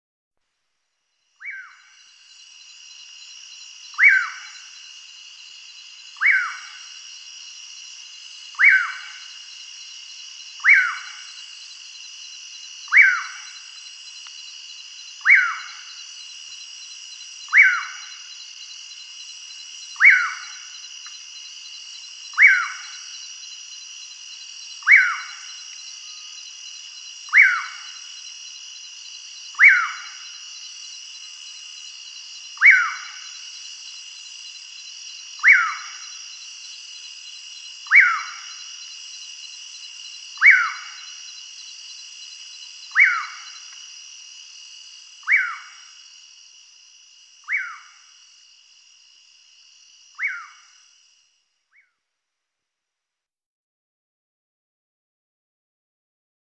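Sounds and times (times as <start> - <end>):
Hydropsalis albicollis curiango calling: 1.4 - 2.8, 3.5 - 5.0, 5.7 - 7.0, 8.1 - 11.8, 12.7 - 14.0, 15.0 - 16.1, 17.4 - 18.5, 19.8 - 21.2, 21.8 - 23.3, 24.6 - 26.5, 27.1 - 28.3, 29.4 - 30.7, 32.5 - 33.6, 35.3 - 36.4, 37.7 - 38.9, 40.4 - 41.4, 42.8 - 43.8, 45.2 - 46.0, 47.4 - 48.1, 50.1 - 50.8, 51.7 - 52.0.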